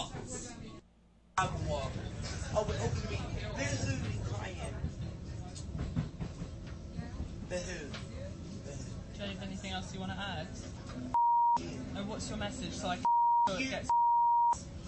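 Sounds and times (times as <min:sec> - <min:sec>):
passengers chattering: 0:00.0 - 0:13.9
speech: 0:01.4 - 0:04.9, 0:07.5 - 0:08.4, 0:09.2 - 0:14.0
moving train carriage rumbling and rattling: 0:01.4 - 0:13.0.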